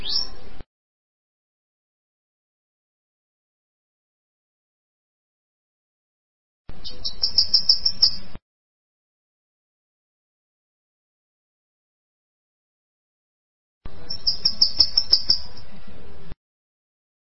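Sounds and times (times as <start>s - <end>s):
bananaquit song: 0.0s - 0.6s, 6.7s - 8.4s, 13.9s - 16.2s
speech: 6.8s - 7.5s.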